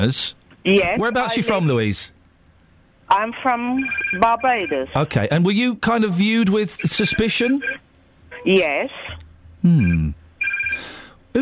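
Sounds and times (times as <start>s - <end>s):
speech: 0.0s - 2.2s, 3.1s - 7.8s, 8.4s - 10.1s, 10.8s - 11.4s
telephone ringing in short electronic bursts: 3.8s - 5.0s, 6.8s - 7.8s, 9.8s - 10.9s.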